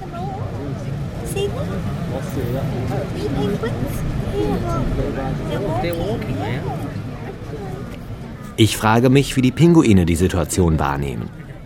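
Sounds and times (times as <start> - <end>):
dense crowd of people chattering at a penguin colony: 0.0 - 11.6
speech: 1.4 - 6.9, 8.6 - 11.4.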